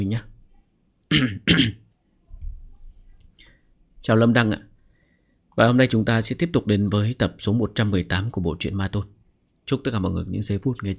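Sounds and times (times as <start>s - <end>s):
speech: 0.0s - 0.3s, 1.1s - 1.8s, 4.0s - 4.7s, 5.6s - 10.9s
person coughing while reading a story aloud: 1.1s - 1.8s
person clearing throat while reading a story aloud: 1.1s - 1.9s.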